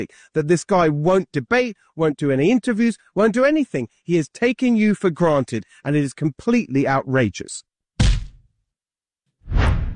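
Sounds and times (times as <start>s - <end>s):
speech: 0.0s - 7.7s
broad rushing swoosh sound effect: 9.5s - 9.9s.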